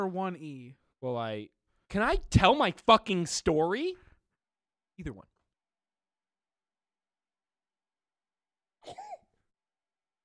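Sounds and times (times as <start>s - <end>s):
speech: 0.0s - 4.0s, 5.0s - 5.3s
person sneezing: 8.8s - 9.3s.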